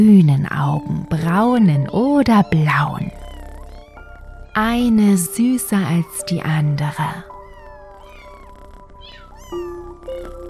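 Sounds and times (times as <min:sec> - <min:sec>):
speech: 0:00.0 - 0:03.2, 0:04.6 - 0:07.3
several cats meowing: 0:02.4 - 0:10.4.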